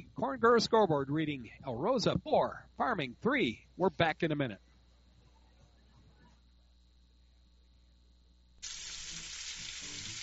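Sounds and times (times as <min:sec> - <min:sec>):
speech: 0:00.2 - 0:04.7
meat sizzling on a grill: 0:08.6 - 0:10.2.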